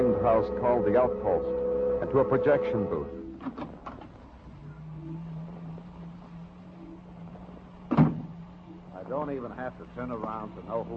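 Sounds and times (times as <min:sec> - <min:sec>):
speech: 0:00.0 - 0:03.7, 0:09.2 - 0:10.9
low steady hum: 0:00.0 - 0:10.9
door opening with a sharp clunk: 0:07.9 - 0:08.4.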